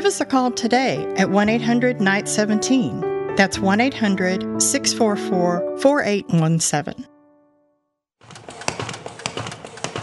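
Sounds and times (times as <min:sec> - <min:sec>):
speech: 0:00.0 - 0:07.1
paper folding machine running: 0:08.2 - 0:10.0.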